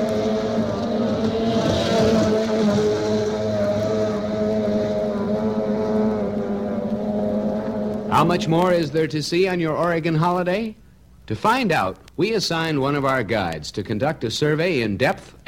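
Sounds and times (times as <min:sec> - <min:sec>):
outboard racing boats roaring across Prineville Lake in Oregon: 0:00.0 - 0:09.0
speech: 0:08.2 - 0:15.4.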